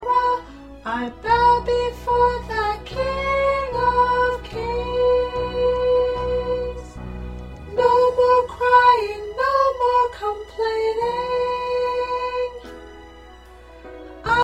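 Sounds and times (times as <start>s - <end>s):
soprano singing: 0.0s - 14.4s.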